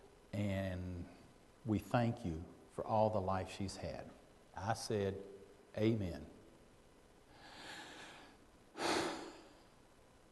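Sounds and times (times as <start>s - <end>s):
speech: 1.6s - 6.4s
dying woman's last breaths: 7.3s - 9.8s.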